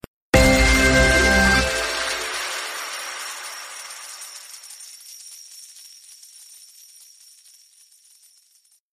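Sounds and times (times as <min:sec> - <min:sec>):
big win sound: 0:00.4 - 0:04.4.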